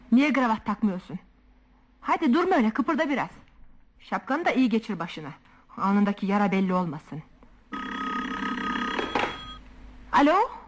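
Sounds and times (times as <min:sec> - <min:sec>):
speech: 0:00.1 - 0:01.3, 0:02.1 - 0:07.3, 0:10.2 - 0:10.6
telephone bell ringing: 0:07.7 - 0:09.6.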